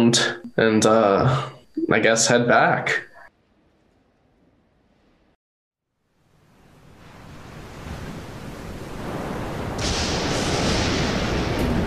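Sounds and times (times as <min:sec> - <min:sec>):
speech: 0:00.0 - 0:03.1
heavy ocean waves crashing against a ship's hull and over its deck: 0:06.7 - 0:11.8.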